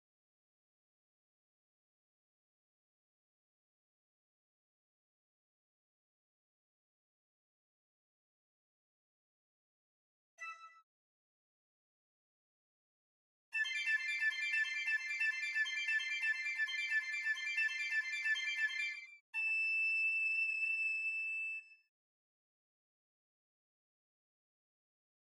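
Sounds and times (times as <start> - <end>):
piccolo: 13.6 - 21.9.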